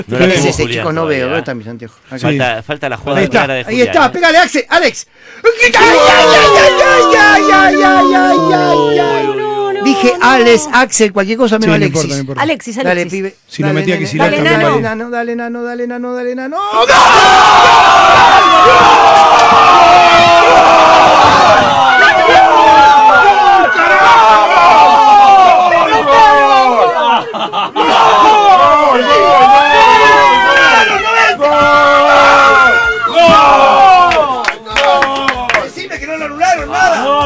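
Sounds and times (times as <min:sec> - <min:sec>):
speech: 0:00.0 - 0:25.1
laughter: 0:02.3 - 0:04.0, 0:26.4 - 0:28.5
group of people yelling and cheering: 0:05.6 - 0:10.5, 0:16.6 - 0:37.2.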